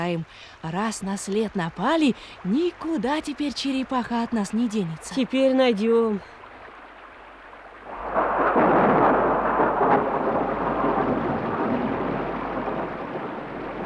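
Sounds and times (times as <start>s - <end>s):
speech: 0.0s - 6.4s
heavy rain downpour: 0.0s - 13.8s
low thunder rumbling: 7.8s - 13.8s.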